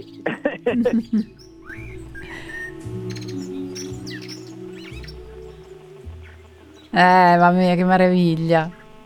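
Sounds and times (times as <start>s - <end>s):
speech: 0.0s - 1.5s, 6.9s - 8.8s
common blackbird singing: 0.0s - 9.0s
steady low droning background: 0.0s - 9.0s.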